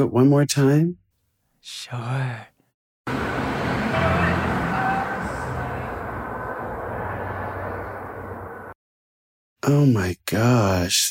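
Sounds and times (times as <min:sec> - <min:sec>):
speech: 0:00.0 - 0:01.0, 0:01.6 - 0:02.5, 0:09.7 - 0:11.0
car driving past: 0:03.1 - 0:08.8.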